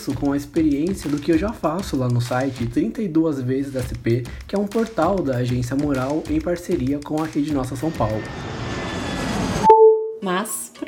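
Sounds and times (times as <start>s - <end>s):
speech: 0.0s - 8.6s, 10.2s - 10.7s
steady airplane engine roar: 7.9s - 9.7s.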